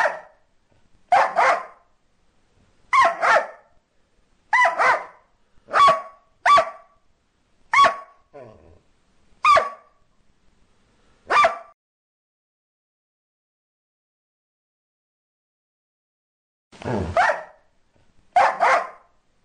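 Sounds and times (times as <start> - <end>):
dog giving harsh barks: 0.0 - 0.4, 1.1 - 1.9, 2.9 - 3.8, 4.5 - 7.0, 7.7 - 8.2, 9.4 - 10.0, 11.3 - 11.8, 16.9 - 17.7, 18.4 - 19.2.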